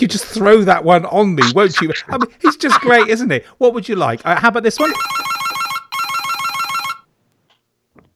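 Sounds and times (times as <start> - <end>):
speech: 0.0 - 5.3
laughter: 1.4 - 3.2
telephone ringing: 4.8 - 7.1.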